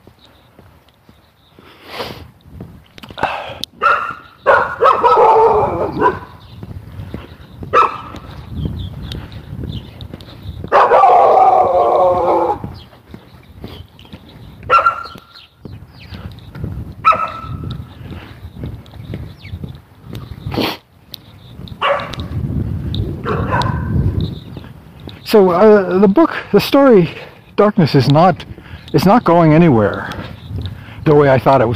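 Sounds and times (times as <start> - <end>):
dog barking and yipping: 3.8 - 6.4, 7.7 - 8.4, 10.6 - 12.7, 14.6 - 15.4, 17.0 - 17.7, 21.8 - 22.3, 23.2 - 24.1
dog whining barks: 3.8 - 6.4, 7.7 - 8.2, 10.7 - 12.6, 14.7 - 15.3, 17.0 - 17.6, 21.8 - 22.2, 23.2 - 24.0
speech: 25.3 - 30.2, 31.1 - 31.7.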